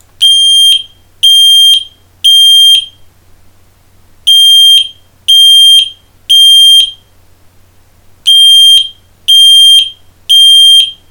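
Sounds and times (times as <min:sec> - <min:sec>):
FireAngel ST 630 smoke alarm sounding: 0:00.2 - 0:03.0, 0:04.3 - 0:07.0, 0:08.3 - 0:11.0.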